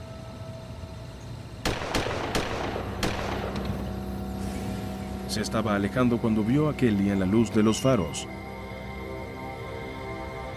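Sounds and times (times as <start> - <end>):
gunshots: 1.6 - 3.9
steady low rumble: 1.7 - 10.5
speech: 5.3 - 8.4.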